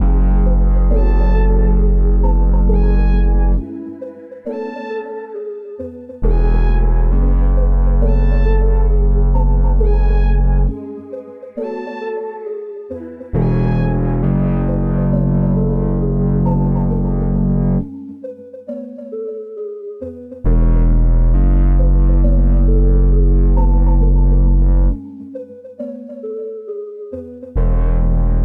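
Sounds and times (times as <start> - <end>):
music loop at 135 BPM in F sharp minor: 0.0 - 28.4.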